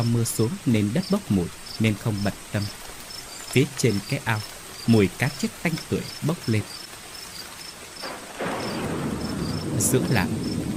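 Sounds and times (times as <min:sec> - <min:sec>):
speech: 0:00.0 - 0:02.8, 0:03.5 - 0:06.8, 0:09.8 - 0:10.5
thunder from a lightning strike on dry ground in a village: 0:08.0 - 0:10.7.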